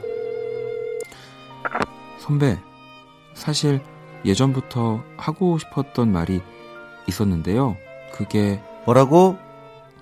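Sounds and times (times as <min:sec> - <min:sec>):
electronic telephone ringback tone: 0:00.0 - 0:01.1
speech: 0:02.2 - 0:02.7, 0:03.4 - 0:09.4.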